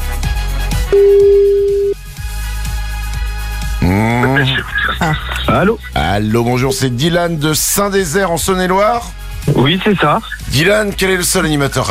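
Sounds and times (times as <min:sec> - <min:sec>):
rhythmic music bed with thumping beats: 0:00.0 - 0:11.8
electronic phone ring tone: 0:00.9 - 0:02.0
speech: 0:05.6 - 0:11.8.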